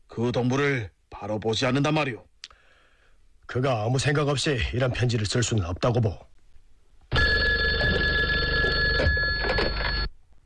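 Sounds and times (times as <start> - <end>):
speech: 0.2 - 2.3, 3.5 - 6.3
telephone bell ringing with a bright metallic trill: 7.1 - 10.1.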